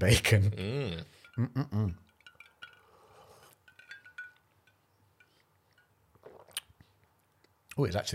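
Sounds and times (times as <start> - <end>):
speech: 0.0 - 2.0, 7.8 - 8.1
glasses clinking in a toast: 0.9 - 6.6
person sipping rum: 2.6 - 3.9, 5.2 - 7.0.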